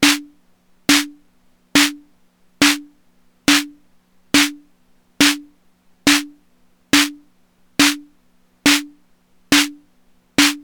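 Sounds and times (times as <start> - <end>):
Korg Volca Beats snare with big cap: 0.0 - 0.3, 0.9 - 1.2, 1.8 - 2.0, 2.6 - 2.9, 6.1 - 6.3, 7.0 - 7.2, 7.8 - 8.1, 8.7 - 8.9, 9.5 - 9.8, 10.4 - 10.6.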